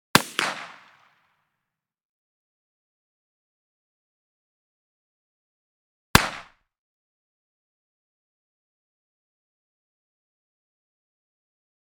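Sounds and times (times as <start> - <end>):
.357 Magnum pistol blasts at long range: 0.1 - 1.1, 6.2 - 6.5.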